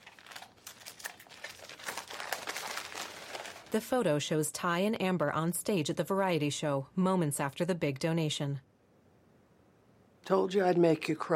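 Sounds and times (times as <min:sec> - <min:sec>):
wrapping paper of a flat rectangular present being torn open: 0:00.0 - 0:03.8
speech: 0:03.7 - 0:08.7, 0:10.3 - 0:11.3.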